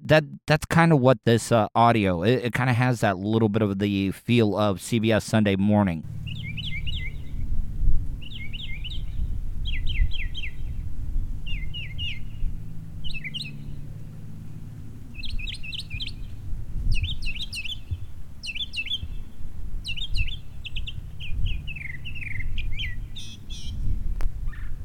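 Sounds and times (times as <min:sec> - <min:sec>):
speech: 0:00.1 - 0:06.4
low rumble: 0:06.0 - 0:24.8
bird chirping and singing: 0:06.2 - 0:07.5, 0:08.2 - 0:10.8, 0:11.5 - 0:13.8, 0:15.1 - 0:23.9.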